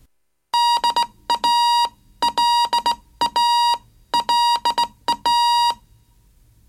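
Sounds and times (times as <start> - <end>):
Morse code electronic tone keyed into short and long beeps: 0.6 - 5.8.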